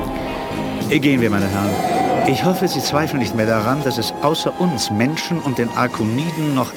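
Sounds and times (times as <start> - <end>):
spaceship lifting off and racing away, radio-drama effect: 0.1 - 5.5
speech: 0.9 - 6.7.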